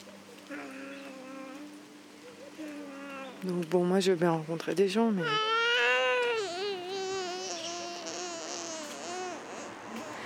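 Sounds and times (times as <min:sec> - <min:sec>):
baby babbling and cooing on a street walk: 0:00.5 - 0:01.8, 0:02.6 - 0:03.4, 0:05.2 - 0:10.2
speech: 0:03.4 - 0:05.5.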